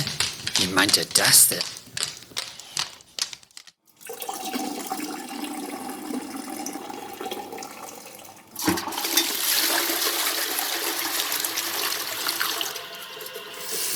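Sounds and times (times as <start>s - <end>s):
quick clicks and rattles: 0.0s - 3.8s
speech: 0.6s - 1.8s
running tap water as hands are washed: 4.0s - 13.9s
toilet flush with rushing water: 4.0s - 13.9s.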